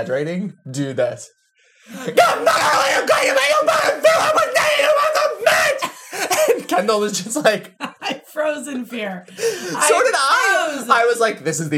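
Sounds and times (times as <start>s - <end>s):
speech: 0.0s - 11.7s
person imitating passengers leaning out of car windows and screaming: 2.0s - 5.9s.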